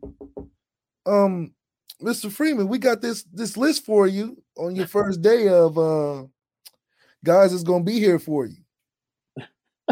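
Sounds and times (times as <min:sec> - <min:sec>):
knocking on a door: 0:00.0 - 0:00.5
speech: 0:01.0 - 0:06.4, 0:07.2 - 0:08.6
person calling out from inside: 0:04.6 - 0:05.4.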